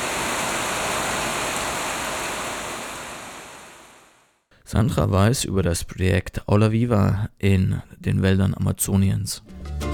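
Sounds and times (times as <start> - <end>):
heavy tropical rain pouring: 0.0 - 4.2
speech: 4.6 - 9.8.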